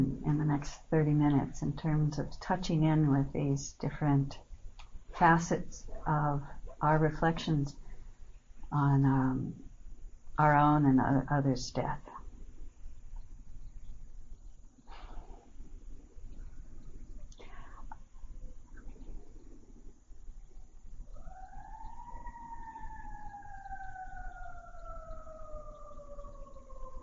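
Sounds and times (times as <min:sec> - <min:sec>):
speech: 0:00.0 - 0:04.5, 0:05.2 - 0:07.8, 0:08.7 - 0:09.7, 0:10.4 - 0:12.2
wailing emergency vehicle siren passing: 0:21.1 - 0:27.0.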